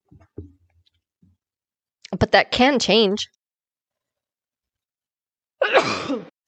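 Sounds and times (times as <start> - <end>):
speech: 2.2 - 3.4
loud human sneeze: 5.6 - 6.4.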